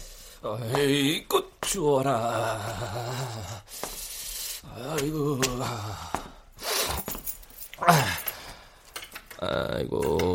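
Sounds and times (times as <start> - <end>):
person murmuring: 0.4 - 3.7, 4.7 - 6.2, 7.8 - 8.3
speech: 0.4 - 3.8, 4.7 - 6.3, 7.8 - 8.2, 9.4 - 10.3
keys jangling and clinking at a lock: 6.6 - 9.4.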